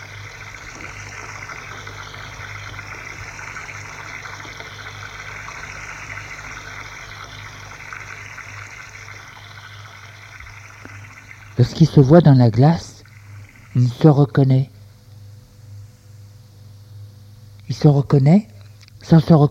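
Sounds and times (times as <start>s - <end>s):
person washing hands and face: 0.0s - 14.0s
water running from a tap: 0.0s - 14.1s
speech: 11.6s - 12.9s, 13.8s - 14.7s, 17.8s - 18.5s, 19.1s - 19.5s.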